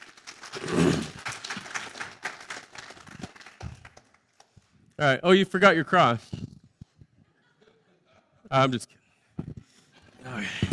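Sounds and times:
audience applause: 0.0s - 4.6s
speech: 5.0s - 6.4s, 8.5s - 9.0s
laughter: 7.1s - 8.5s.

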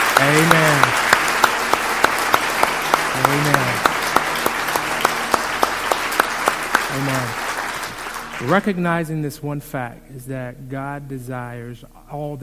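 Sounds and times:
crowd applauding: 0.0s - 8.8s
speech: 0.3s - 1.1s, 8.4s - 12.4s.

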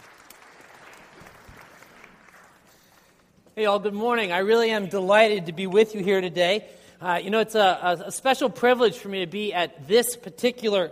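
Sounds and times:
large indoor crowd clapping: 0.0s - 3.5s
speech: 3.6s - 10.9s.

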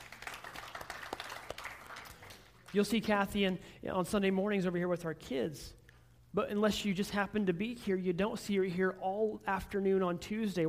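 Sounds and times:
audience clapping: 0.0s - 3.0s
speech: 2.7s - 10.6s.

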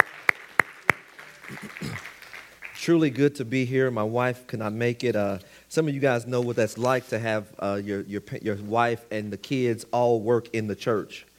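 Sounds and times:
church audience clapping: 0.0s - 2.9s
speech: 1.5s - 2.1s, 2.8s - 11.3s.

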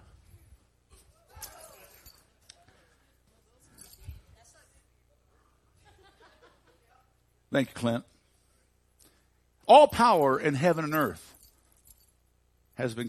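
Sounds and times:
heavy wad of keys thrown and jangling: 0.9s - 3.0s, 3.6s - 4.4s, 9.9s - 12.2s
laughter: 5.8s - 7.1s
speech: 7.5s - 8.1s, 9.7s - 11.3s, 12.8s - 13.0s.

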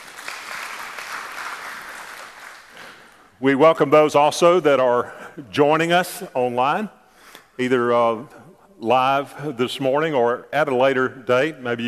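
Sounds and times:
audience clapping in praise in a large room: 0.0s - 3.2s
speech: 3.4s - 7.0s, 7.6s - 11.8s.

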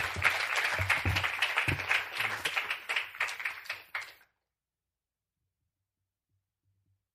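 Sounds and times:
roomful of people applauding: 0.0s - 4.4s.

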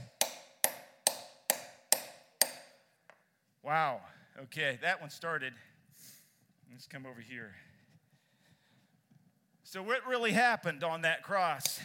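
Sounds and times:
hammer driving a nail into wood: 0.0s - 2.8s
speech: 3.7s - 5.7s, 6.7s - 7.7s, 9.7s - 11.8s.

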